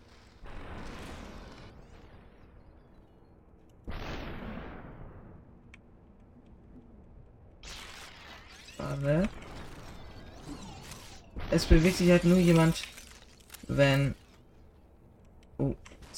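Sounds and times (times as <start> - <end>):
video game gunfire bursts: 0.0 - 2.4, 7.6 - 14.3
speech: 9.0 - 9.4, 11.5 - 12.9, 13.7 - 14.2.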